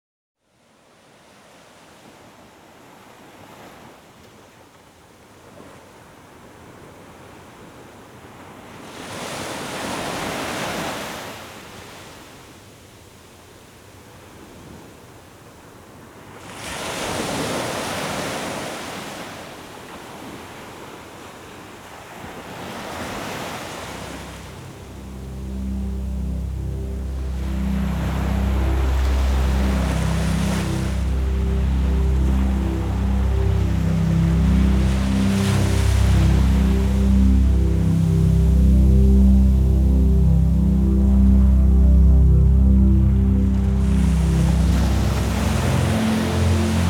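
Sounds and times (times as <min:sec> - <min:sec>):
ocean: 0:05.4 - 0:12.6, 0:15.6 - 0:46.8
relaxing healing vibrations music: 0:22.9 - 0:46.8.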